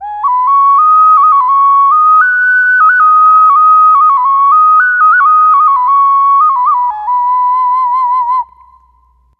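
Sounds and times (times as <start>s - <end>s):
ambient ocarina melody with clean flutes: 0.0s - 9.3s.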